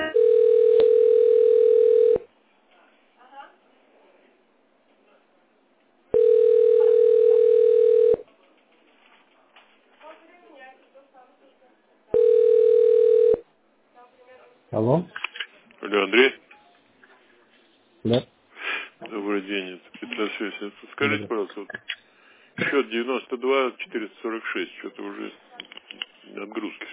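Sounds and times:
telephone dialing tones: 0:00.1 - 0:02.3, 0:06.2 - 0:08.2, 0:12.2 - 0:13.4
faint murmur: 0:02.6 - 0:23.0
speech: 0:22.9 - 0:25.8, 0:26.4 - 0:26.9.

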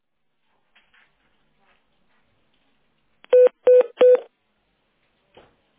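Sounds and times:
telephone dialing tones as an office call is put through: 0:03.3 - 0:04.2.

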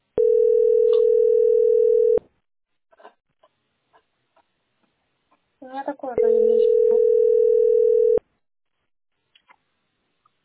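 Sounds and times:
telephone tone after a dropped call: 0:00.2 - 0:02.2, 0:06.2 - 0:08.2.

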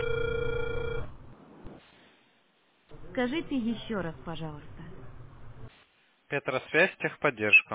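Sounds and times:
telephone ringback tone on a call to a technical support line: 0:00.0 - 0:01.2
speech: 0:03.2 - 0:04.8, 0:06.3 - 0:07.7.

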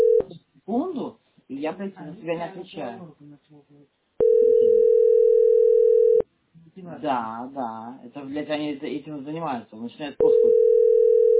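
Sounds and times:
speech: 0:01.6 - 0:05.4, 0:06.8 - 0:10.8
telephone line dial tone: 0:04.2 - 0:06.2, 0:10.2 - 0:11.3.

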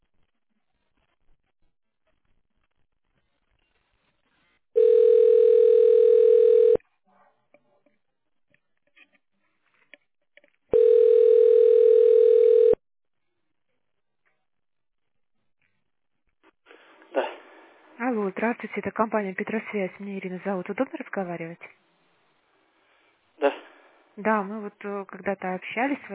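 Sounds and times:
telephone ringback tone while a call is transferred to a company's central office: 0:04.8 - 0:06.8, 0:10.8 - 0:12.8
speech: 0:18.5 - 0:21.8, 0:24.2 - 0:26.1.

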